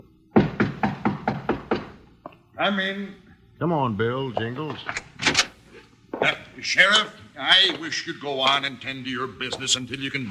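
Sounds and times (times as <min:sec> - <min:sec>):
knocking on a wooden office door: 0:00.4 - 0:02.0
speech: 0:02.6 - 0:05.1, 0:06.2 - 0:10.2.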